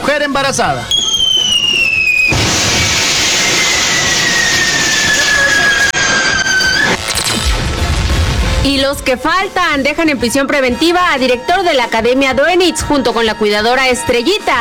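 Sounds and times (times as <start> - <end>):
speech: 0.1 - 1.0, 8.6 - 14.5
shrill whistle sliding downward: 0.9 - 7.5
fireworks going off: 0.9 - 9.1.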